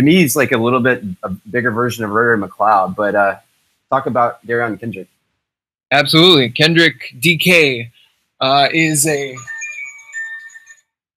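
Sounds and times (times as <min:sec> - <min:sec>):
speech: 0:00.0 - 0:05.1, 0:05.9 - 0:09.5
bright electronic phone ringtone: 0:09.2 - 0:10.9.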